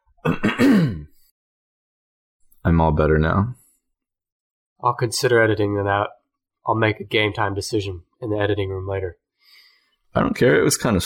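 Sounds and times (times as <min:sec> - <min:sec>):
speech: 0:00.2 - 0:00.9, 0:02.6 - 0:03.6, 0:04.8 - 0:09.2, 0:10.1 - 0:11.0
loud throat clearing: 0:00.2 - 0:01.2.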